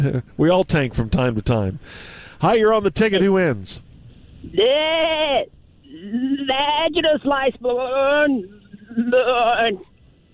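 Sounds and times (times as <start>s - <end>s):
speech: 0.0s - 9.9s
goat bleating: 4.5s - 7.0s, 7.6s - 9.9s.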